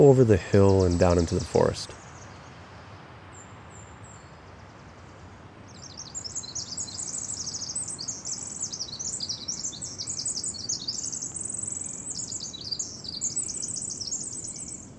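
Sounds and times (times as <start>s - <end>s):
speech: 0.0s - 2.0s
bird singing rapid high-pitched notes and trills: 0.0s - 2.5s, 5.7s - 14.9s
soft steady hiss: 0.0s - 14.9s.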